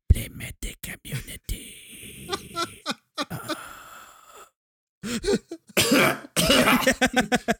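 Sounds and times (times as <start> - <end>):
laughter: 2.3 - 3.6, 6.6 - 7.5
person coughing: 5.8 - 7.0.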